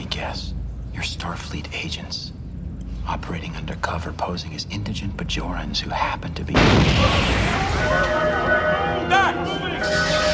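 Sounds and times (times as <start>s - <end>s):
speech: 0.2s - 2.4s, 3.0s - 10.2s
crashing and smashing debris bursts: 6.6s - 8.2s
loud explosion: 6.6s - 8.2s.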